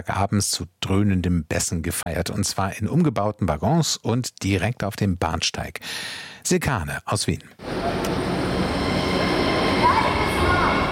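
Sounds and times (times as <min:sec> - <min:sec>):
speech: 0:00.0 - 0:08.2
U3 line subway train leaving Volkstheater U-Bahn station in Vienna: 0:07.6 - 0:10.9.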